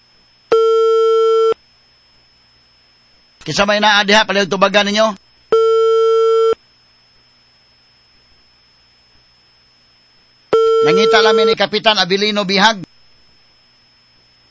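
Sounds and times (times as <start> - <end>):
telephone ringing tone on a call to a barangay hall: 0.5 - 1.6, 5.5 - 6.6, 10.5 - 11.6
speech: 3.4 - 5.2, 10.9 - 12.9.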